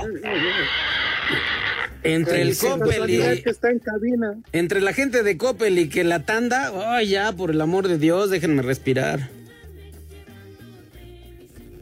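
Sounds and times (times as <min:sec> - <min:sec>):
person imitating a pig with squeal and snorting oink: 0:00.0 - 0:02.4
speech: 0:02.0 - 0:09.4.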